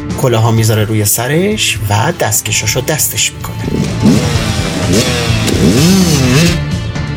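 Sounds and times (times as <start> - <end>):
speech: 0.2 - 5.4
motorcycle engine revving as a rider jumps hills: 3.5 - 7.0.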